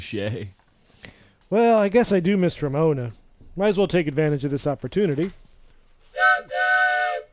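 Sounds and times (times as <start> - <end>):
speech: 0.0 - 0.6, 1.5 - 5.4, 6.3 - 6.6
train whistle blasts: 6.2 - 7.3.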